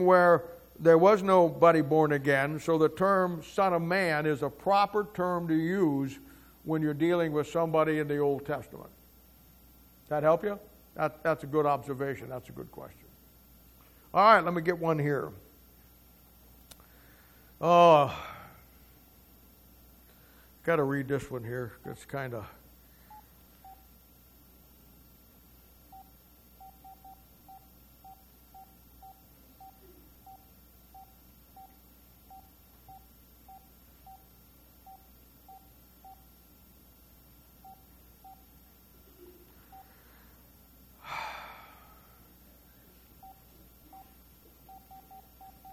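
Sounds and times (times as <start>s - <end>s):
speech: 0.0s - 9.0s, 10.1s - 13.0s, 14.1s - 15.4s, 17.6s - 18.4s, 20.7s - 22.6s
telephone keypad dialing tones: 25.9s - 36.3s, 37.6s - 38.5s, 43.2s - 45.7s.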